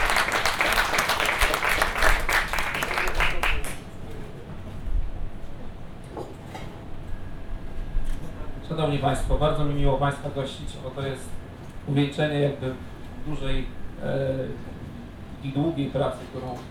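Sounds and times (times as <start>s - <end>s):
audience applause for a speaker invited onto a stage: 0.0s - 4.0s
speech: 8.8s - 14.7s, 15.4s - 16.6s.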